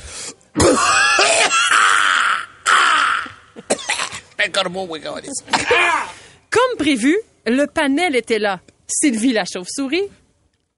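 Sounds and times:
shaman clearing throat with hacks: 0:00.6 - 0:01.7, 0:03.6 - 0:04.3, 0:05.5 - 0:06.0
shaman coughing harshly: 0:00.6 - 0:01.9, 0:03.6 - 0:04.3, 0:05.5 - 0:06.1
speech: 0:04.4 - 0:10.2.

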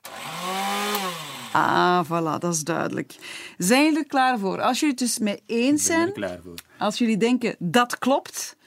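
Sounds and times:
electric kitchen mixer whirring: 0:00.0 - 0:01.8
speech: 0:01.5 - 0:08.6.

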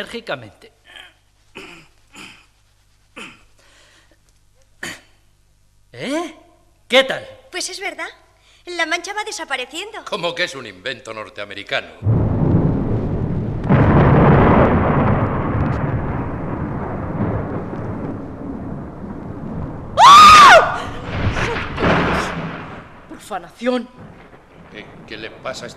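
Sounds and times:
speech: 0:00.0 - 0:00.8, 0:06.0 - 0:12.2, 0:23.3 - 0:24.2, 0:24.8 - 0:25.7
thunderclap rolling into a long heavy rumble: 0:12.0 - 0:25.7.

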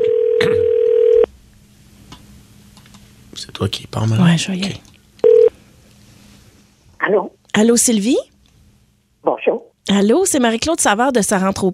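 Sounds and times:
steady mid-pitched telephone tone: 0:00.0 - 0:01.3, 0:05.2 - 0:05.5
speech: 0:03.4 - 0:04.9, 0:07.1 - 0:08.3, 0:09.9 - 0:11.7.

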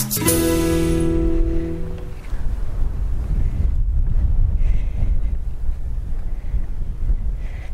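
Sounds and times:
brief musical tone: 0:00.2 - 0:02.4
wind gusts buffeting the microphone outdoors: 0:00.8 - 0:07.7.

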